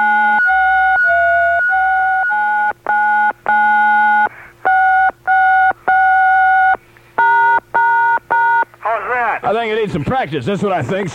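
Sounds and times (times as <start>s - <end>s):
tune played on push-button phone keypad dual-tone beeps: 0.0s - 8.7s
speech: 9.9s - 11.1s.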